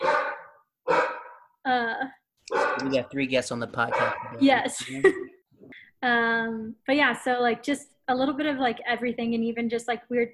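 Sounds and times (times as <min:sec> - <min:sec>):
dog barking loud and drawn out: 0:00.0 - 0:01.5, 0:02.5 - 0:03.0, 0:03.8 - 0:04.4
speech: 0:02.8 - 0:05.4, 0:06.0 - 0:10.3.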